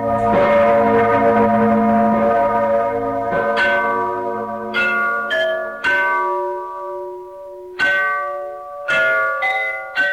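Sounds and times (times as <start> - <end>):
large cathedral bell in Freiberg in the Erzgebirge, Saxony, Germany, ringing: 0.0 - 10.1.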